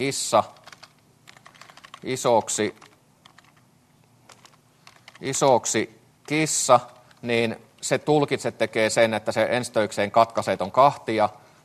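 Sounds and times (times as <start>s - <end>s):
speech: 0.0s - 0.6s, 2.0s - 2.8s, 5.2s - 11.6s
typing on a computer keyboard: 0.5s - 3.6s, 4.3s - 5.5s.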